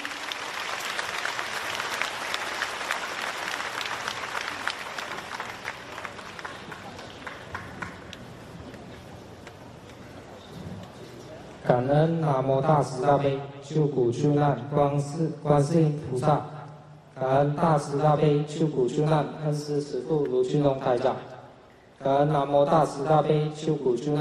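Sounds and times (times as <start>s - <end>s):
large audience applauding: 0.0s - 8.5s
speech: 11.7s - 16.5s, 17.2s - 21.3s, 22.0s - 24.1s.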